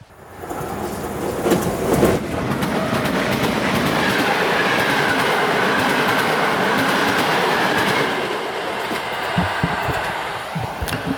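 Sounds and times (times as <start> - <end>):
Intercity passenger train rushing past: 0.1 - 11.1
train wheels clickety-clacking over rail joints: 0.4 - 11.1.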